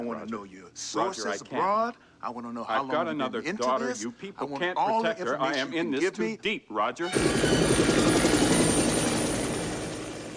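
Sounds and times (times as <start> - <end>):
speech: 0.0 - 8.5
helicopter rising into view with rotor chop: 7.1 - 10.3.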